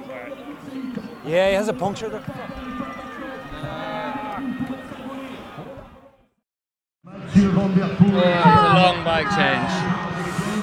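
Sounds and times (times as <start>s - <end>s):
large crowd murmuring inside a velodrome: 0.0s - 6.0s, 7.1s - 10.6s
speech: 0.7s - 2.8s, 7.4s - 10.1s
large velodrome crowd cheering and groaning at a cycling race: 1.9s - 5.7s, 8.1s - 10.6s.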